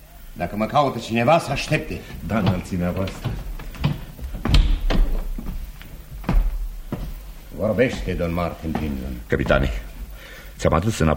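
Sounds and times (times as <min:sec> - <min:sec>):
speech: 0:00.4 - 0:03.4, 0:07.6 - 0:09.9, 0:10.6 - 0:11.1
wooden door thudding shut with a latch clunk: 0:02.5 - 0:05.4.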